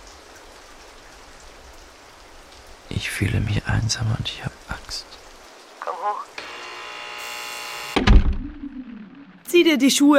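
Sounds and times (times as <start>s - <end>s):
steady rain: 0.0s - 8.0s
speech: 2.9s - 5.2s, 9.5s - 10.1s.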